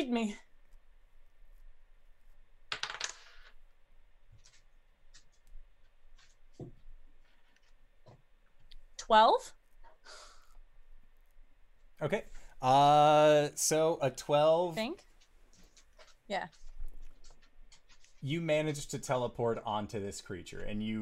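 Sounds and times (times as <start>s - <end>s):
speech: 0.0s - 0.5s, 9.1s - 9.6s, 12.0s - 15.1s, 16.3s - 16.6s, 18.2s - 20.9s
dice rolled for a tabletop role-playing game: 2.6s - 3.6s, 4.3s - 5.4s, 15.2s - 18.2s.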